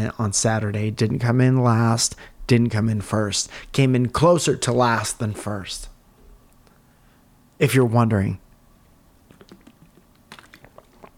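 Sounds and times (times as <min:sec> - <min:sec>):
speech: 0:00.0 - 0:05.9, 0:07.6 - 0:08.4
lip smacks: 0:08.8 - 0:11.1
person sipping a drink: 0:08.8 - 0:11.1.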